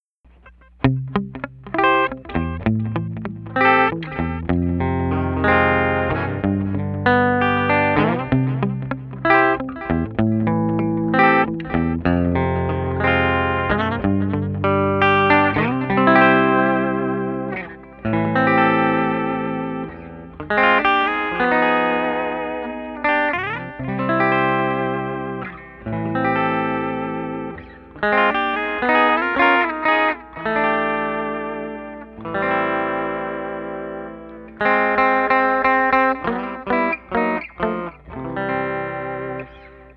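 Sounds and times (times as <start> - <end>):
guitar playing a bridge: 0.0 - 39.9.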